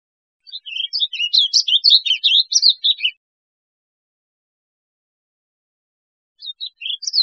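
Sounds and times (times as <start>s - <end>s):
warbling vireo singing a rapid rambling warble of slurred notes: 0.4s - 3.2s, 6.4s - 7.2s.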